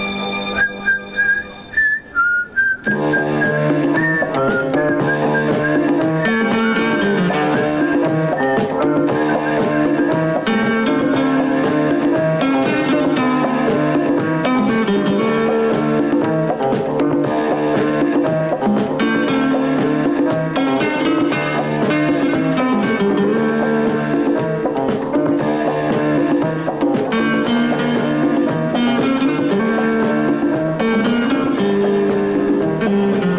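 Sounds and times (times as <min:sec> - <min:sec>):
full band playing upbeat TV theme music: 0:00.0 - 0:33.3
lone whistled melody of a TV theme tune: 0:00.1 - 0:10.1.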